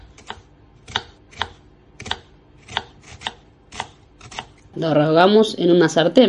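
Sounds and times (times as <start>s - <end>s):
knife chopping an onion: 0.0s - 4.7s
speech: 4.8s - 6.2s.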